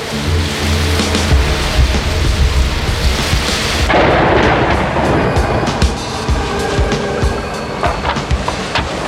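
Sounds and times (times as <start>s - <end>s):
heavy wind in a storm: 0.0s - 9.0s
rain in a storm: 0.0s - 9.0s
sea waves crashing: 0.0s - 9.0s
deep thunder-like booms: 1.2s - 7.5s.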